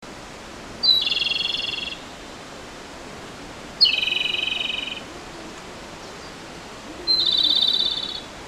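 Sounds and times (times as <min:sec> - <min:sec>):
Japanese robin singing: 0:00.8 - 0:02.2, 0:03.8 - 0:05.4, 0:06.0 - 0:08.3.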